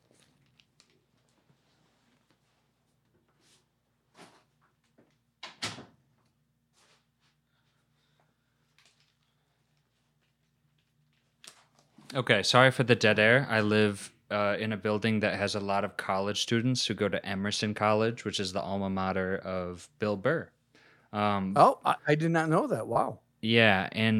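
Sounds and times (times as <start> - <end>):
faint shuffling: 0.0 - 5.1, 6.7 - 12.2
low steady hum: 0.0 - 24.1
door being shut: 5.4 - 6.0
speech: 12.1 - 24.1.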